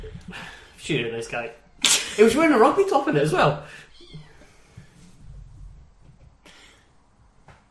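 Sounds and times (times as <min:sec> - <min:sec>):
speech: 0:00.3 - 0:01.6, 0:02.2 - 0:04.2
cat meowing: 0:03.9 - 0:04.5.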